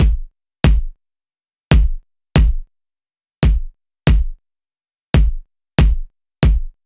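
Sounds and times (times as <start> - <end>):
dry kick drum: 0.0 - 1.0, 1.7 - 2.7, 3.4 - 4.4, 5.2 - 6.8.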